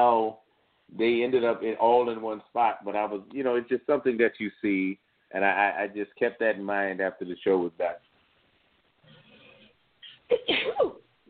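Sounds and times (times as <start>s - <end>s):
speech: 0.0s - 8.1s, 10.3s - 11.0s
person sneezing: 10.3s - 11.0s.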